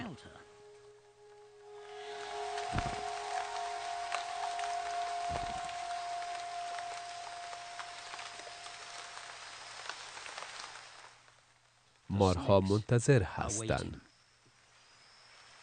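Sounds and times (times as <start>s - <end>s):
heavy rain from a rainstorm on forest foliage: 1.7s - 13.5s
low thumps: 2.6s - 3.6s
speech: 12.2s - 14.1s.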